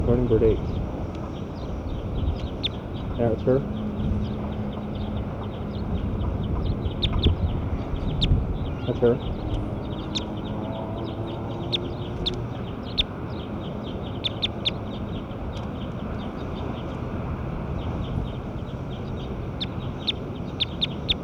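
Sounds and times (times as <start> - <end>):
birds chirping: 0.0 - 21.2
steady low rumbling background: 0.0 - 21.2
speech: 0.1 - 0.9, 3.2 - 3.8, 8.9 - 9.4.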